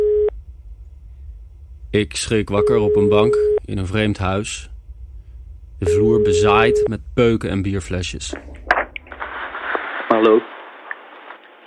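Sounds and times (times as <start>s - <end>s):
incoming phone call telephone tone: 0.0s - 0.3s, 5.8s - 7.0s
faint low hum: 0.0s - 11.6s
speech: 2.0s - 4.7s, 5.8s - 8.7s, 10.2s - 10.5s.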